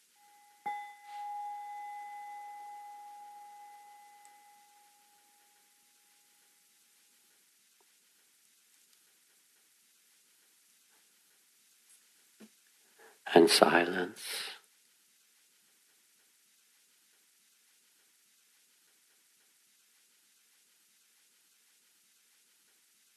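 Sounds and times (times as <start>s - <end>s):
single bell struck and ringing: 0.0s - 5.6s
faintly hissing background: 0.0s - 23.1s
speech: 13.3s - 14.5s.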